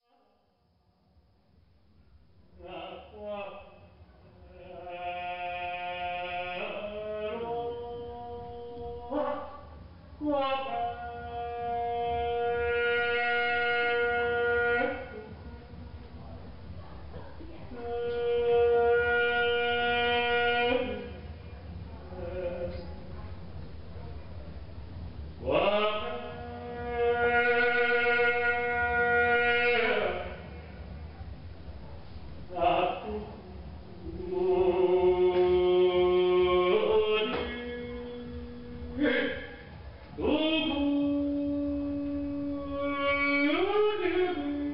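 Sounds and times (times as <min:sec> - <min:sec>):
steady low hum: 0:00.0 - 0:44.7
male soloist singing traditional Chinese music live: 0:02.6 - 0:15.8, 0:17.7 - 0:21.4, 0:22.0 - 0:23.0, 0:25.4 - 0:30.8, 0:32.5 - 0:44.7.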